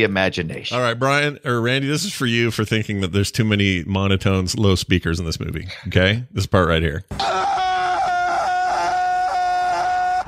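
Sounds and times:
speech: 0:00.0 - 0:07.5
man screaming inside a spacesuit: 0:07.2 - 0:10.2.

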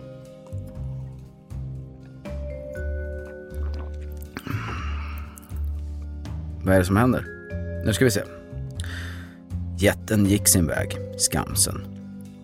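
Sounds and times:
person sipping a drink: 0:00.1 - 0:06.1
speech: 0:06.6 - 0:08.4, 0:09.8 - 0:12.0.

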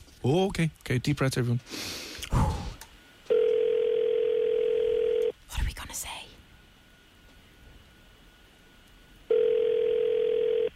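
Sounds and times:
speech: 0:00.2 - 0:02.5
phone ringback tone on an outgoing call to a brewery: 0:03.3 - 0:05.3, 0:09.3 - 0:10.7.

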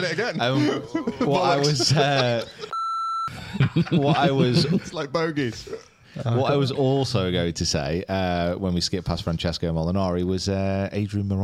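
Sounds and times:
laughter: 0:00.0 - 0:07.0
faint noise: 0:00.0 - 0:11.4
speech: 0:00.0 - 0:11.4
steady censor beep: 0:02.7 - 0:03.4.

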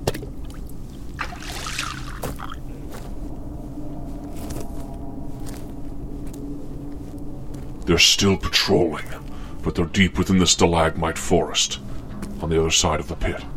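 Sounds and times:
steady low rumble: 0:00.0 - 0:13.5
water trickling and splashing into a cup: 0:01.2 - 0:02.6
speech: 0:07.9 - 0:13.5.

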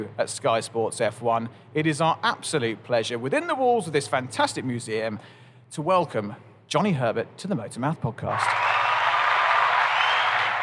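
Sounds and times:
speech: 0:00.0 - 0:08.9
recorded crowd applause played as a sound effect for an intro: 0:08.3 - 0:10.6.

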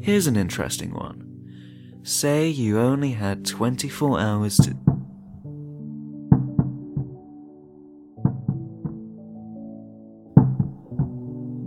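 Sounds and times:
speech: 0:00.0 - 0:01.3, 0:02.0 - 0:04.9
heavy knocks from the floor above: 0:04.6 - 0:05.4, 0:06.3 - 0:07.2, 0:08.2 - 0:09.1, 0:10.4 - 0:11.3.

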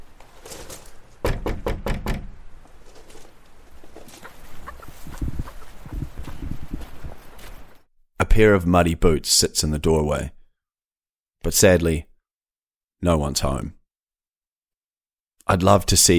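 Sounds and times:
soft outdoor shuffling movement: 0:00.0 - 0:01.2, 0:02.6 - 0:07.9
firm knocking on a house door: 0:01.2 - 0:02.4
speech: 0:08.4 - 0:10.4, 0:11.4 - 0:12.1, 0:13.0 - 0:13.8, 0:15.5 - 0:16.1.

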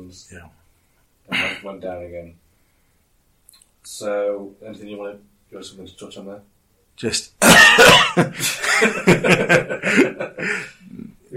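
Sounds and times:
speech: 0:00.0 - 0:00.6, 0:01.3 - 0:02.4, 0:03.5 - 0:10.7
man coughing in quick uneven bursts: 0:07.4 - 0:08.4
man chuckling: 0:07.4 - 0:11.1.

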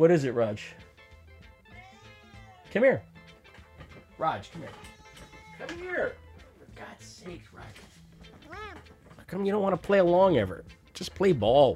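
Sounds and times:
speech: 0:00.0 - 0:00.9, 0:02.7 - 0:03.1, 0:04.2 - 0:04.9, 0:05.6 - 0:06.2, 0:06.8 - 0:11.7
cat meowing: 0:01.7 - 0:02.8, 0:04.5 - 0:05.8, 0:08.4 - 0:08.9.

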